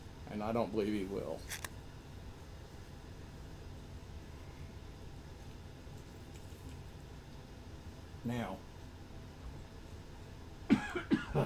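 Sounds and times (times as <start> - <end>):
speech: 0.4 - 1.7, 8.2 - 8.7
quick coughs: 10.7 - 11.4.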